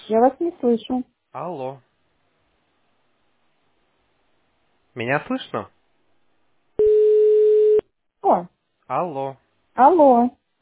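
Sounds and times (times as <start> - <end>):
speech: 0.1 - 1.9, 5.0 - 5.8, 8.3 - 10.4
telephone line tone like a call-waiting beep: 6.8 - 7.8.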